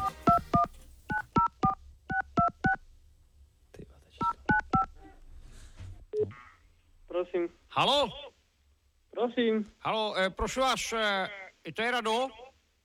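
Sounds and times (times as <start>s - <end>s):
touch-tone keypad beeps dialing a telephone number to Slovakia: 0.0s - 2.8s, 4.2s - 4.9s
speech: 7.3s - 8.2s, 9.2s - 12.4s.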